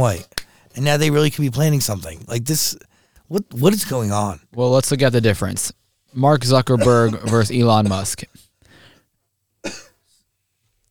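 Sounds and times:
speech: 0:00.0 - 0:08.4
person coughing into a microphone: 0:06.8 - 0:08.1, 0:09.6 - 0:10.0.

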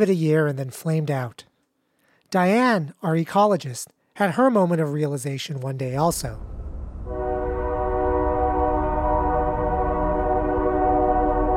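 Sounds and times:
speech: 0:00.0 - 0:01.5, 0:02.3 - 0:06.6
low rumbling background: 0:05.9 - 0:11.5
freight train horn blast echoing across neighborhood: 0:07.0 - 0:11.5.

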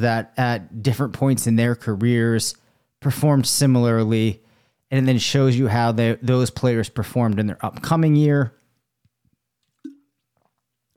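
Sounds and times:
speech: 0:00.0 - 0:08.6
faint lip sounds: 0:09.6 - 0:10.9
person sipping water: 0:09.6 - 0:10.9
gulp: 0:09.7 - 0:10.6.

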